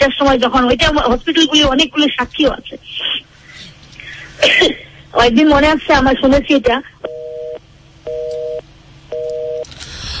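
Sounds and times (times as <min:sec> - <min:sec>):
speech: 0:00.0 - 0:03.1, 0:04.4 - 0:07.2
telephone busy tone after a call line drops: 0:07.0 - 0:09.7.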